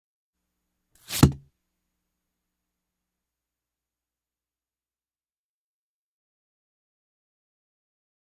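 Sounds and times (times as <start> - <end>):
axe slicing flesh: 1.0 - 1.4.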